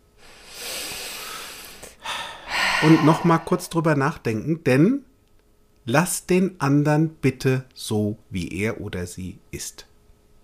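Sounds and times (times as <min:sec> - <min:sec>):
long deep breath in and sharp breathy exhale: 0:00.2 - 0:03.9
speech: 0:02.8 - 0:05.1, 0:05.8 - 0:09.9.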